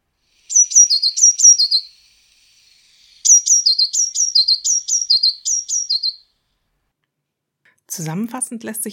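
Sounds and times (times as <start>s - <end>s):
Eurasian blue tit calling: 0.3s - 6.3s
speech: 8.0s - 8.9s.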